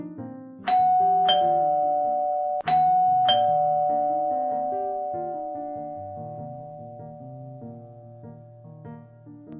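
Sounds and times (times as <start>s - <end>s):
melodic electronic doorbell chime: 0.7s - 8.2s.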